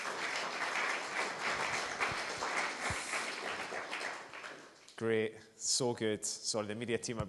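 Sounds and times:
audience applause: 0.0s - 5.0s
speech: 5.0s - 7.2s.

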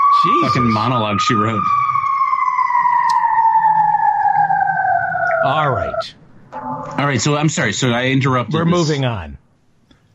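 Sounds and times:
emergency vehicle siren passing outside: 0.0s - 7.3s
speech: 0.2s - 1.8s, 5.4s - 6.2s, 7.0s - 9.4s.

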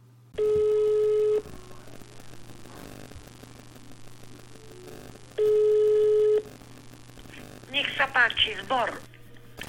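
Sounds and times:
buzzing telephone ring tones on a call: 0.4s - 1.4s, 5.4s - 6.4s
speech: 8.2s - 9.1s.

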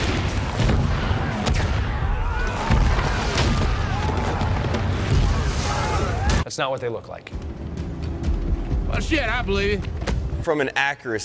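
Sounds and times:
heavy explosions from a strike on tanks: 0.0s - 6.4s
speech: 6.6s - 7.6s, 8.9s - 11.2s.

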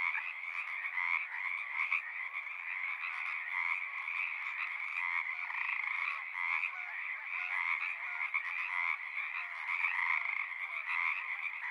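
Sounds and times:
Pacific tree frogs in a dense chorus at ponds in Seattle, Washington: 0.0s - 11.6s.

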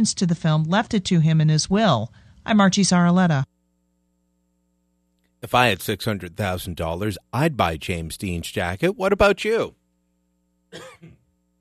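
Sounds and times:
speech: 0.0s - 3.5s, 5.4s - 9.8s, 10.7s - 11.2s
faint steady hum: 0.0s - 11.6s
harsh rasping cough: 10.7s - 11.2s.

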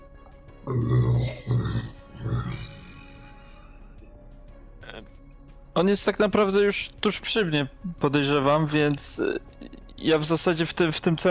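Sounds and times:
speech: 0.7s - 1.9s, 5.8s - 11.2s
voice imitating a low rumbling growl: 0.7s - 3.0s.

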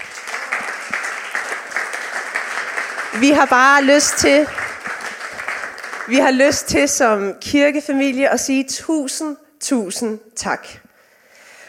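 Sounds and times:
congregation applauding: 0.0s - 6.9s
speech: 3.2s - 4.6s, 6.1s - 10.8s.

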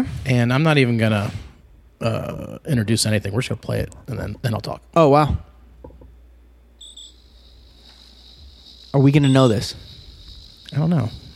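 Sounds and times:
speech: 0.0s - 1.4s, 2.0s - 5.5s, 8.9s - 9.9s, 10.7s - 11.2s
low hum: 0.0s - 11.3s
crickets chirping in a high-pitched trill: 6.8s - 11.3s.

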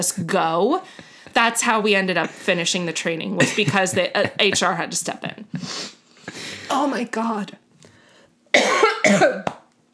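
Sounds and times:
speech: 0.0s - 7.6s, 8.5s - 9.6s
person coughing: 3.4s - 4.6s, 8.6s - 9.6s.

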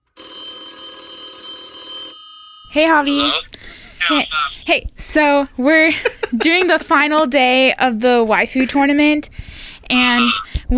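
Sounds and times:
phone ringing tone placing an outgoing call: 0.0s - 3.4s
speech: 2.8s - 10.7s
laughter: 5.8s - 6.9s.

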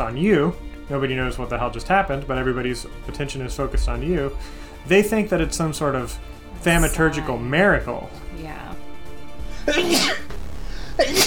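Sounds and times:
speech: 0.0s - 8.8s, 9.6s - 10.2s, 11.0s - 11.2s
person sneezing with a voiced intake and breathy burst: 9.7s - 10.3s, 11.0s - 11.2s.

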